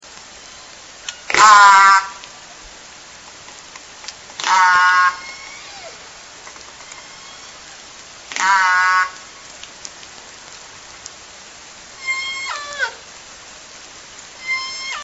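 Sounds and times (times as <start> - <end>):
S4 S1 orca call sequence: 0.4 - 2.3, 4.4 - 6.1, 6.8 - 9.4, 12.0 - 13.0, 14.4 - 15.0.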